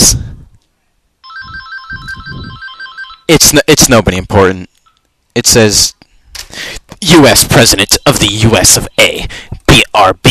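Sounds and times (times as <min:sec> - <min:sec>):
speech: 0:00.0 - 0:00.2, 0:03.3 - 0:04.7, 0:05.4 - 0:10.2
phone ringtone: 0:01.2 - 0:03.4.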